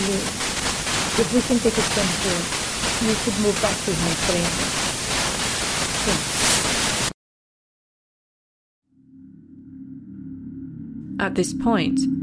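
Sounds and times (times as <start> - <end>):
loud dense broadband static hiss: 0.0 - 7.2
speech: 1.2 - 4.9, 6.0 - 6.4, 11.2 - 12.2.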